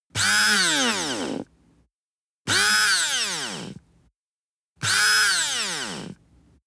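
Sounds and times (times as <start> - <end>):
servo drill switching on and off: 0.2 - 1.4, 2.5 - 3.8, 4.8 - 6.2.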